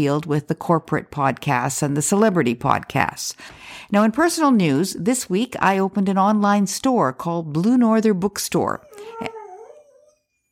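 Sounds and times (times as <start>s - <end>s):
speech: 0.0s - 9.4s
puppy howling: 8.8s - 10.2s.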